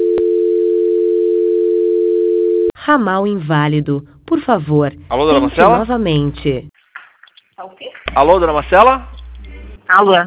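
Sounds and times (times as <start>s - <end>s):
telephone tone during a call transfer: 0.0s - 2.7s
speech: 2.9s - 6.7s, 7.6s - 9.1s, 9.9s - 10.2s.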